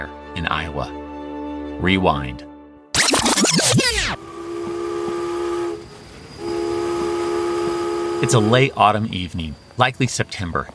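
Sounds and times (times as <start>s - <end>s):
speech: 0.0s - 1.0s, 1.8s - 2.5s, 8.2s - 10.7s
steam train whistle: 3.9s - 8.8s
steam locomotive hissing and clanking as it arrives in Cedar Rapids, Iowa: 4.1s - 10.7s.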